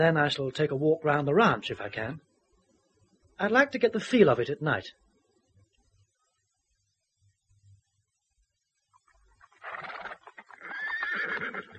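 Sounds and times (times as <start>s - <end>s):
speech: 0.0s - 2.3s, 3.4s - 5.0s
horse on a ranch neighing while coaxed with sugar: 9.5s - 11.7s.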